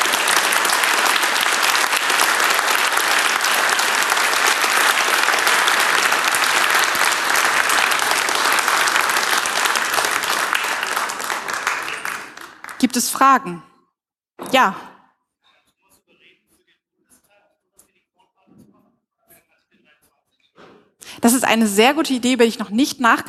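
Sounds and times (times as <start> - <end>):
large audience clapping: 0.0 - 13.5
speech: 13.0 - 13.7, 14.6 - 14.9, 21.2 - 23.2.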